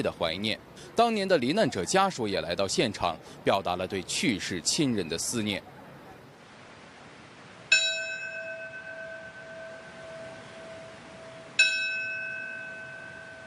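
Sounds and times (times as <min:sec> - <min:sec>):
speech: 0:00.0 - 0:05.7
memorial bell tolling at a 9/11 memorial ceremony in lower Manhattan: 0:07.7 - 0:13.4.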